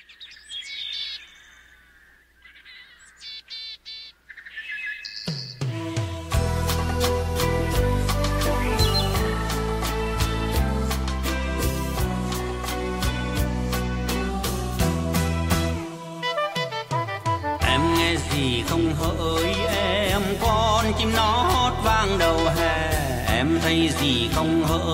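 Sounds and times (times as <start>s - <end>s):
bright twittering bird chirps: 0.0s - 5.7s, 8.5s - 9.2s
instrumental introduction of a Vietnamese song with beat and bass: 5.6s - 24.9s.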